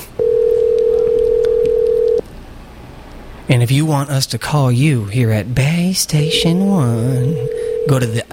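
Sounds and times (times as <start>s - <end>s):
steady ringback tone on an outgoing phone call to a pizzeria: 0.2s - 2.2s, 6.2s - 8.2s
speech: 3.7s - 8.3s.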